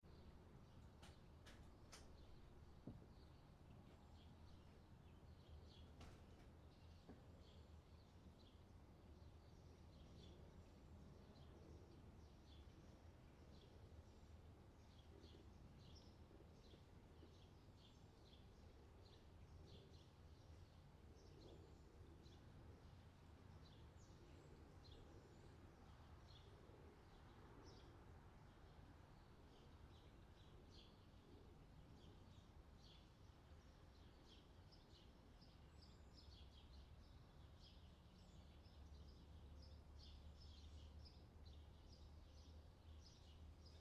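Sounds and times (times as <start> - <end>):
outdoor summer ambience: 0.0 - 43.7.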